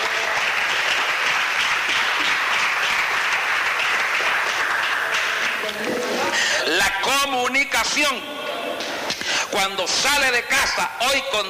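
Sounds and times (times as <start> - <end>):
large audience applauding: 0.0 - 7.3
speech: 7.3 - 8.4, 9.5 - 11.4.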